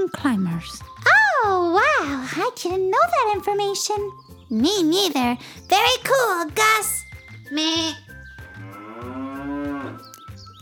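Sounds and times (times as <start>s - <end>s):
speech: 0.1s - 8.0s
cow mooing: 8.5s - 10.2s.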